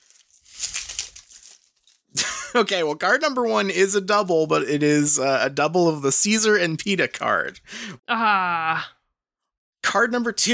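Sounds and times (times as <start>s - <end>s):
plastic wrapper of a trading card pack being torn open: 0.0s - 2.1s
speech: 2.5s - 9.0s, 9.9s - 10.5s.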